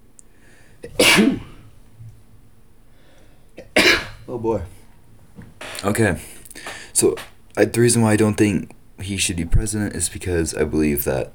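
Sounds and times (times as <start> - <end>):
person sneezing: 0.8 - 1.6
speech: 4.4 - 4.8, 5.8 - 6.4, 7.0 - 11.3.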